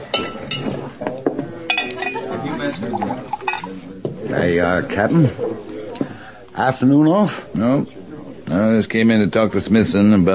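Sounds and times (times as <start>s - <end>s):
low murmur of voices: 0.0s - 10.3s
glass clinking as rye whiskey is poured: 0.1s - 0.8s, 1.7s - 3.8s
speech: 4.3s - 5.7s, 6.6s - 10.3s.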